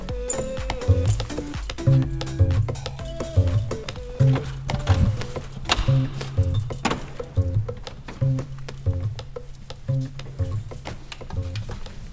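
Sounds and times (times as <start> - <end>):
keys jangling unlocking a church sacristy door: 0.2 - 8.7, 9.2 - 11.9.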